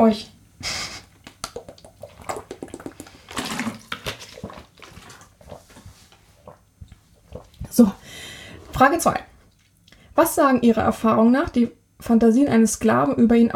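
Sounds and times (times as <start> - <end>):
speech: 0.0 - 0.8, 7.8 - 8.0, 8.8 - 9.3, 10.2 - 13.5
person sipping water with slurping and swallowing: 1.2 - 8.0.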